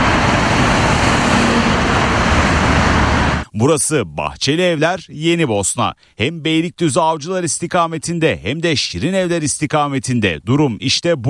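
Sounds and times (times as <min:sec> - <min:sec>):
heavy slow-moving highway traffic roar: 0:00.0 - 0:03.5
speech: 0:03.6 - 0:11.2.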